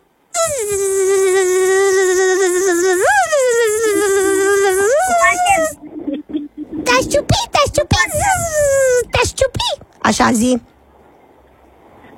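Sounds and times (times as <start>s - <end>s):
voice imitating a mosquito's buzzing: 0.4s - 5.8s, 6.9s - 9.8s
speech: 10.2s - 10.7s.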